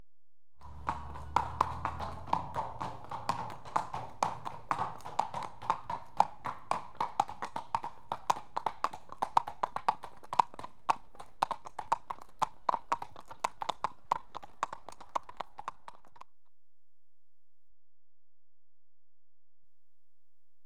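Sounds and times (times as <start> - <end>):
two horses walking under a bridge: 0.6 - 16.2.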